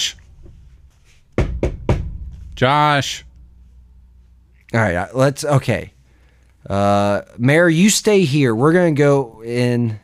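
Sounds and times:
faint noise: 0:00.0 - 0:10.0
firm knocking on a bathroom door: 0:01.4 - 0:02.4
speech: 0:02.6 - 0:03.3, 0:04.7 - 0:06.0, 0:06.6 - 0:10.0.

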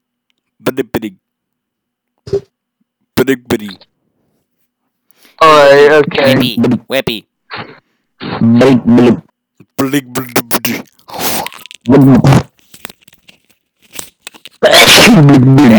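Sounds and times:
speech: 0:00.7 - 0:01.2, 0:03.2 - 0:03.9, 0:05.4 - 0:12.5, 0:14.6 - 0:15.7
short voiced sounds: 0:02.3 - 0:02.5, 0:03.3 - 0:03.8, 0:06.0 - 0:12.5, 0:14.6 - 0:15.7
loud forceful sneeze: 0:14.6 - 0:15.7.

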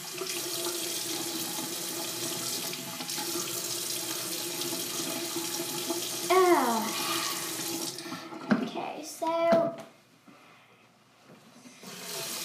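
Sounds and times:
tap water running into sink while someone washes their face: 0:00.0 - 0:08.8, 0:11.8 - 0:12.4.

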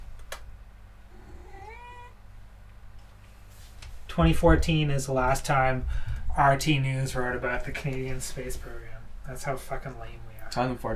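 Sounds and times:
cat meowing: 0:01.1 - 0:02.2
speech: 0:04.2 - 0:10.9.

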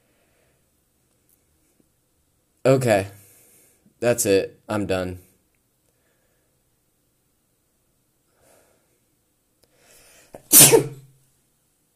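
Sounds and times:
speech: 0:02.6 - 0:03.2, 0:04.0 - 0:05.3
sneeze: 0:10.4 - 0:11.2.

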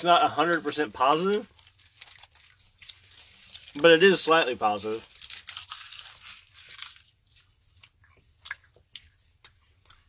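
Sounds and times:
speech: 0:00.0 - 0:01.6, 0:03.7 - 0:05.1
chewing gum: 0:07.4 - 0:10.0.

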